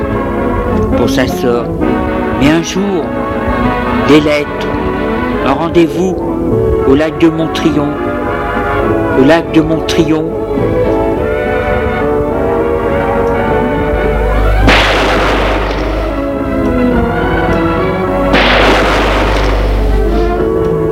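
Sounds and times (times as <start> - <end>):
sustained music: 0.0 - 20.9
speech: 1.0 - 8.1, 8.8 - 10.8
gunshots with lingering echo: 14.6 - 16.3, 18.3 - 20.0.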